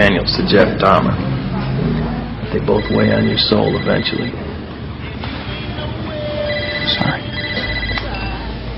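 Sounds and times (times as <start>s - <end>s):
speech: 0.1s - 4.5s
telephone ringing with a bright trilling electronic tone: 2.7s - 4.4s, 6.4s - 8.6s.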